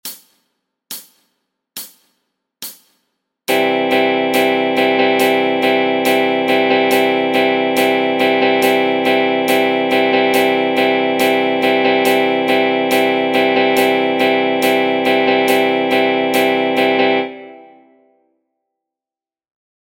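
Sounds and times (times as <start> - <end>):
drum strokes: 0.0 - 16.8.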